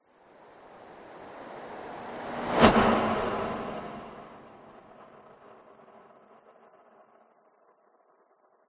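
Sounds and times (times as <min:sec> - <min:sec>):
whoosh: 0:00.8 - 0:05.3.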